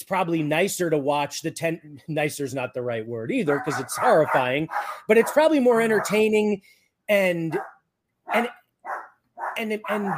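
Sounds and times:
speech: 0.0 - 7.7, 8.3 - 8.6, 9.6 - 10.1
dog barking: 3.5 - 6.3, 7.5 - 10.1.

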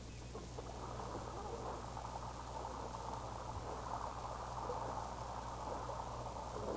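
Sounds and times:
steady rain pouring: 0.0 - 6.7.

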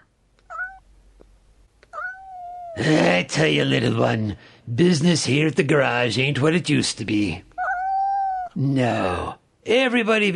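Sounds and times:
cat meowing: 0.4 - 0.9, 1.8 - 2.8, 7.6 - 8.6
speech: 2.8 - 7.5, 8.6 - 10.3.

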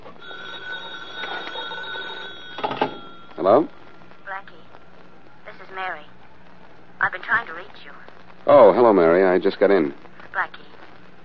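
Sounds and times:
old telephone bell ringing: 0.2 - 3.7
speech: 3.4 - 3.8, 7.2 - 10.7.

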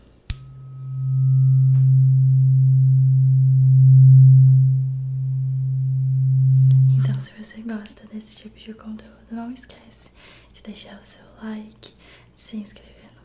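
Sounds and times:
tuning fork struck with a sharp tap: 0.3 - 7.2
speech: 8.3 - 12.9.

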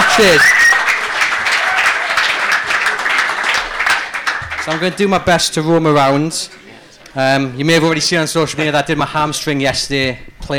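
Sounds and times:
live audience applause: 0.0 - 5.2
speech: 0.2 - 0.6, 4.7 - 10.5.

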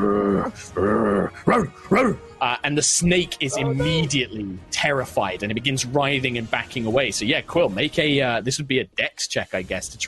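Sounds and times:
human voice imitating a dog's low growl: 0.0 - 2.2
speech: 0.3 - 10.0.

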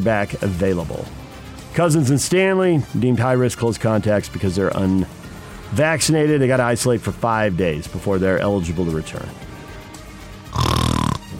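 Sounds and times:
speech: 0.0 - 1.2, 1.8 - 9.4
person imitating a man's snort with their voice: 10.5 - 11.3.

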